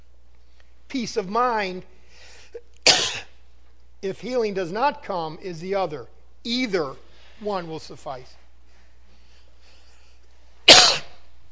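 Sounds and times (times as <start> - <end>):
speech: 0.9 - 2.7, 4.0 - 8.4
single sharp cough: 2.8 - 3.3, 10.7 - 11.2.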